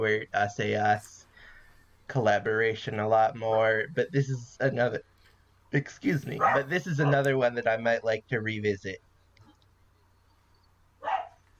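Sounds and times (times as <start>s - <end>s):
speech: 0.0s - 1.2s, 2.1s - 5.1s, 5.7s - 9.1s
faint low hum: 0.0s - 11.5s
dog barking: 6.3s - 7.2s, 11.0s - 11.4s.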